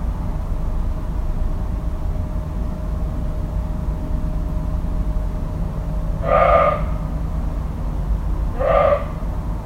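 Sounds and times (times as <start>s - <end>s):
constant low background rumble: 0.0s - 9.6s
deer calling: 6.2s - 7.1s, 8.5s - 9.3s.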